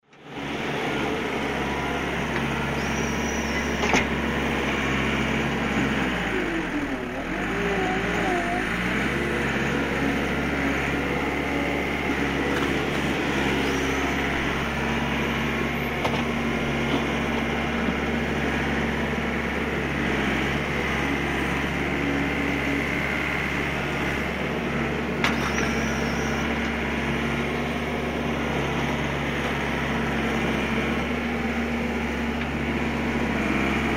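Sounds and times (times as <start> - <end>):
Bobcat skid steer loader: 0.0 - 33.9.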